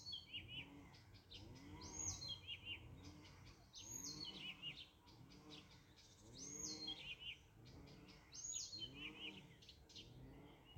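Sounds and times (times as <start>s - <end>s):
Blyth's reed warbler Acrocephalus dumetorum singing in Riga Latvia: 0.0s - 5.0s, 5.7s - 10.7s.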